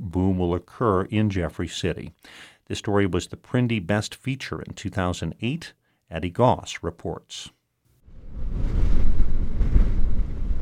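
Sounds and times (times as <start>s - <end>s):
speech: 0.1s - 7.6s
violent wind roaring heard from inside a car: 8.1s - 10.6s.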